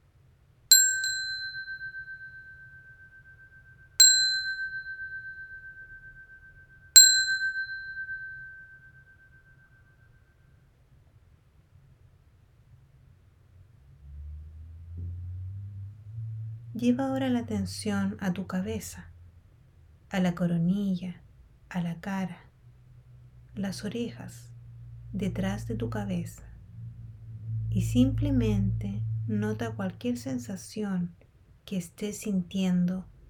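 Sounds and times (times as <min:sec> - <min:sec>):
meditation bell ringing during a guided meditation: 0:00.7 - 0:10.6
soft low rumble: 0:12.3 - 0:33.2
speech: 0:16.8 - 0:19.1, 0:20.1 - 0:22.4, 0:23.6 - 0:24.5, 0:25.1 - 0:26.5, 0:27.7 - 0:33.1.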